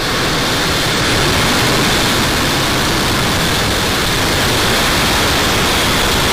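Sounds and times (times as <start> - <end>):
Falcon 9 rocket engines roaring at liftoff: 0.0 - 6.3.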